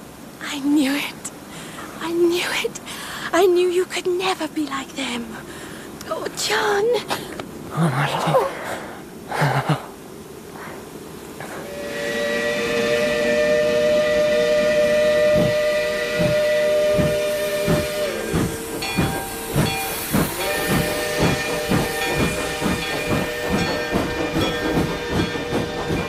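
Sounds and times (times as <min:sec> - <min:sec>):
speech: 0:00.6 - 0:01.2, 0:02.0 - 0:09.9
steam locomotive whistle blowing: 0:11.5 - 0:26.0.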